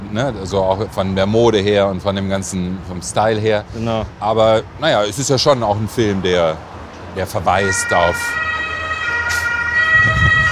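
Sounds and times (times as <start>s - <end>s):
low traffic rumble: 0.0s - 10.5s
speech: 0.1s - 8.4s
Bundeswehr rescue service ambulance siren wailing: 7.4s - 10.5s.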